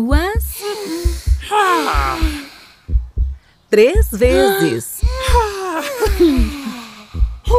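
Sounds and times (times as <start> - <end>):
speech: 0.0 - 0.4, 3.7 - 4.9
low paired thumps like a heartbeat: 0.0 - 7.5
deep breathing in and out to calm a racing heart: 0.6 - 3.7, 5.0 - 7.5.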